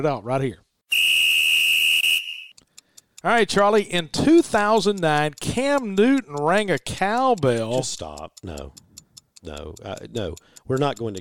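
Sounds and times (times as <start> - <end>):
speech: 0.0 - 0.6, 3.2 - 8.8, 9.4 - 11.1
shrill whistle blast: 0.9 - 2.6.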